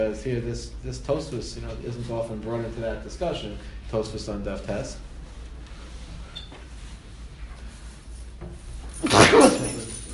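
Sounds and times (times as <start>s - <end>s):
speech: 0.0s - 5.1s
single sharp breathy sneeze: 9.0s - 10.0s.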